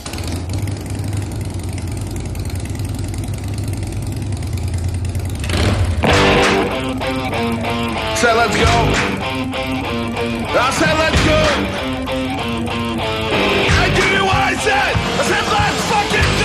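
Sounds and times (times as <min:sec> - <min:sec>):
engine idling and roaring: 0:00.0 - 0:16.4
speech: 0:08.2 - 0:11.9.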